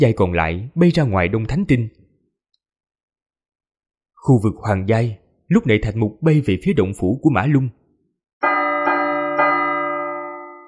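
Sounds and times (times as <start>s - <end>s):
speech: 0.0s - 2.0s, 4.2s - 7.8s
loud warning bell ringing from a tower: 8.4s - 10.6s.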